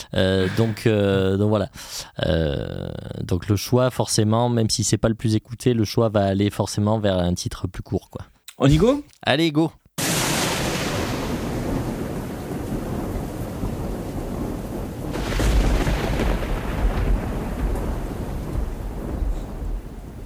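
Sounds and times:
thunder rumbling: 0.0s - 1.4s, 10.0s - 20.2s
steady hiss: 0.0s - 2.6s, 11.9s - 20.2s
speech: 0.1s - 10.2s.

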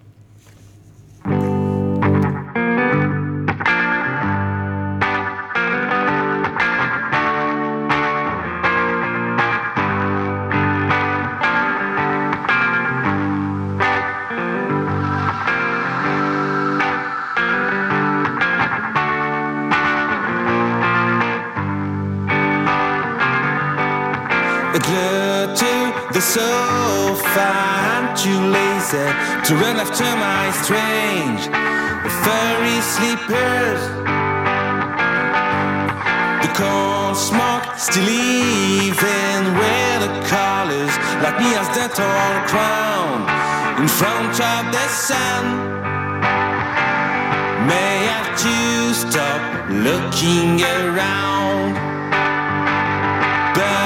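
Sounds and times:
distorted effects-heavy guitars: 0.0s - 53.8s
band playing a newly released single: 10.9s - 53.8s
speech: 29.5s - 34.2s, 37.2s - 39.8s, 41.2s - 45.9s, 48.4s - 51.9s.

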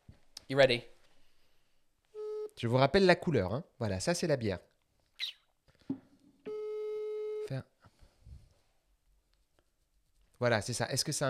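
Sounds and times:
speech: 0.5s - 0.9s, 2.6s - 6.0s, 7.5s - 7.7s, 10.4s - 11.2s
ringback tone of an outgoing phone call: 6.5s - 7.5s.

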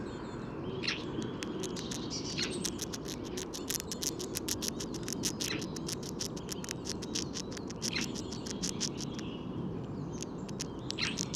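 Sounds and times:
red squirrel eating a seed with dry clicks and crunches: 0.8s - 11.3s.

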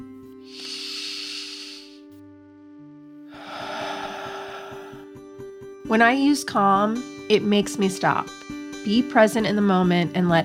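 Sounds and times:
person taking a deep breath: 0.5s - 2.0s, 3.3s - 5.2s
speech: 5.9s - 10.4s.

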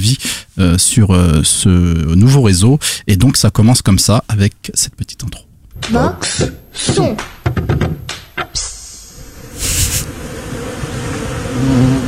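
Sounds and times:
speech: 0.0s - 7.7s, 11.6s - 12.0s
brief hiss: 8.6s - 11.2s
steady droning buzz: 9.1s - 12.0s.

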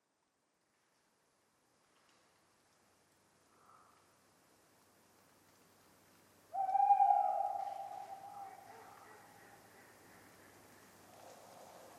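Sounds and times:
tawny owl hooting on a cold autumn night in France: 6.5s - 9.9s.

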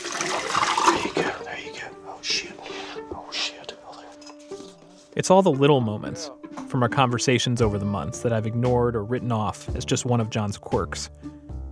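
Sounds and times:
potassium cyanide pouring into a bucket: 0.0s - 1.2s
speech: 5.2s - 11.5s.

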